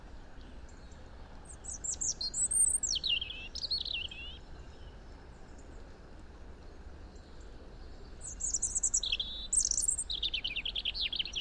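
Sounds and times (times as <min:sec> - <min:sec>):
European robin Erithacus rubecula singing: 0:00.3 - 0:05.8, 0:06.8 - 0:11.3.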